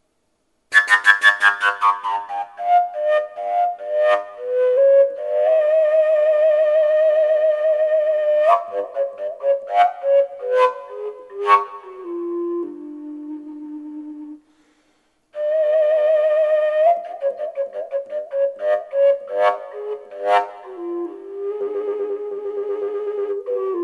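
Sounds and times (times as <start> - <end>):
natural fujara playing: 0.7 - 14.7, 15.4 - 23.8.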